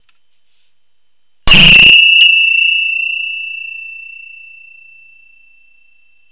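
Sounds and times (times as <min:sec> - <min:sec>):
bells ringing: 0:01.5 - 0:06.2.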